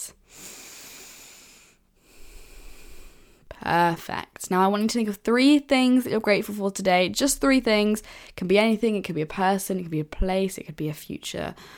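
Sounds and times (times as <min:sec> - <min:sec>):
deep breath in and out: 0:00.2 - 0:03.5, 0:08.0 - 0:08.4, 0:11.6 - 0:11.7
speech: 0:03.6 - 0:11.7.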